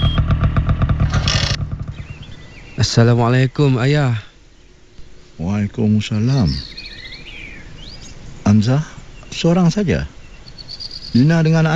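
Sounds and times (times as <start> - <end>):
motorcycle arriving, engine rumbling: 0.0 - 3.0
speech: 2.8 - 4.3, 5.4 - 6.8, 8.5 - 10.2, 11.1 - 11.7.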